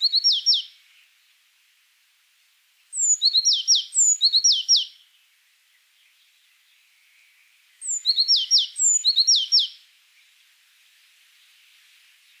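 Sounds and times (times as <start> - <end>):
Azure tit Cyanistes cyanus chirps and thin whistled notes: 3.0 - 4.9, 7.9 - 9.7.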